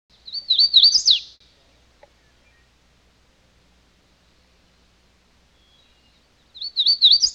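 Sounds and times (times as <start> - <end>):
hooded warbler warbled song phrase: 0.1 - 2.8, 5.5 - 7.3.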